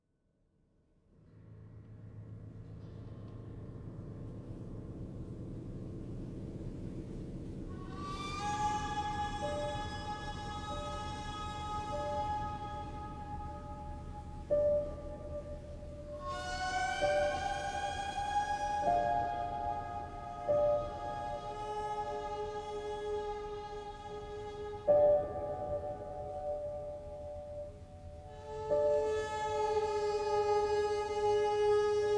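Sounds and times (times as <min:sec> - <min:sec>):
piano: 0:01.1 - 0:32.1
violin: 0:07.1 - 0:32.1.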